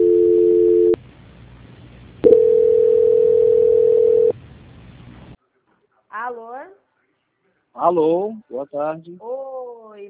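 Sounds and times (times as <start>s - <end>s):
steady telephone line tone during call transfer: 0.0s - 1.0s, 2.2s - 4.3s
speech: 7.9s - 10.0s.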